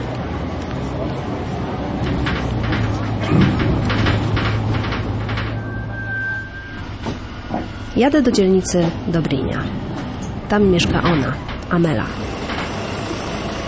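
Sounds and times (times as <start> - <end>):
city bus engine drone: 0.0 - 13.6
rattling and clattering inside a moving city bus: 1.8 - 6.0, 6.9 - 13.4
speech: 8.0 - 9.9, 10.5 - 12.4.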